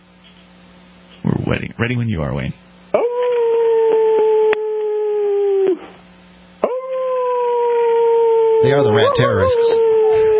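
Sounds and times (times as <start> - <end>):
speech: 1.2 - 2.6, 8.6 - 9.9
dogs howling: 2.9 - 6.0, 6.6 - 10.3.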